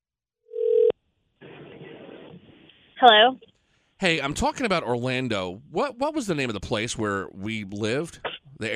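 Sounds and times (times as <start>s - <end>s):
short mid-pitched electronic phone tone: 0.5s - 0.9s
speech: 3.0s - 8.7s.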